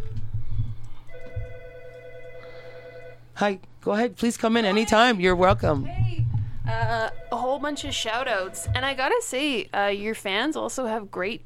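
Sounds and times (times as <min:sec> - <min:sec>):
telephone ringing with an electronic trill: 0:01.1 - 0:03.3, 0:06.9 - 0:09.0
speech: 0:03.4 - 0:06.0, 0:06.7 - 0:11.4.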